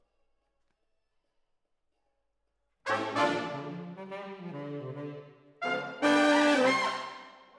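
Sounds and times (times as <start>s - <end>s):
horns: 2.9s - 7.5s.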